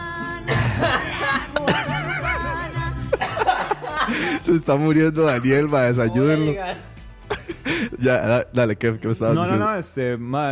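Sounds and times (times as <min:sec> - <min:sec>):
sharp harsh coughs: 0:00.5 - 0:01.1, 0:03.2 - 0:03.7
people laughing: 0:00.5 - 0:08.2
speech: 0:04.5 - 0:06.9, 0:08.0 - 0:10.5.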